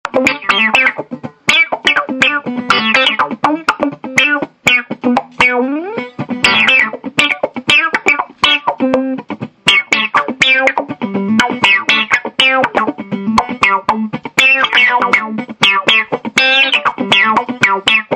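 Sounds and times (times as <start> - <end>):
funky synth sound: 0.1 - 18.1.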